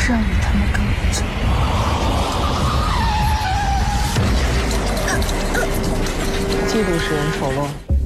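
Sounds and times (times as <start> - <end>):
speech: 0.1 - 0.3, 7.0 - 7.9
car tire squeal as car skids: 1.6 - 7.8.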